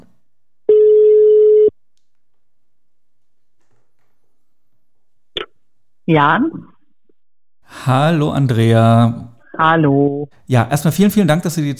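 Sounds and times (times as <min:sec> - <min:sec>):
telephone ringing tone: 0:00.7 - 0:01.7
speech: 0:06.1 - 0:06.7, 0:07.7 - 0:11.7.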